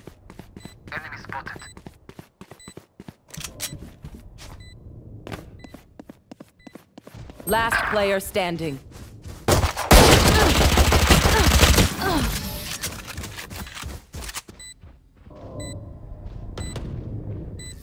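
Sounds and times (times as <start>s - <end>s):
rapid automatic gunfire in a video game: 7.4s - 8.8s, 9.4s - 14.7s
speech: 7.5s - 8.9s.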